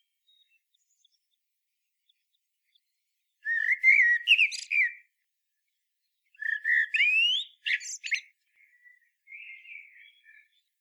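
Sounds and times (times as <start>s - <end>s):
common blackbird singing: 3.4s - 5.1s, 6.3s - 10.7s.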